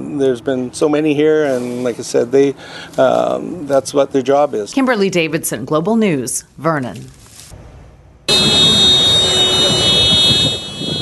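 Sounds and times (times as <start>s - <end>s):
speech: 0.2s - 7.2s
car alarm blaring in Athens after a flash flood: 8.3s - 10.9s.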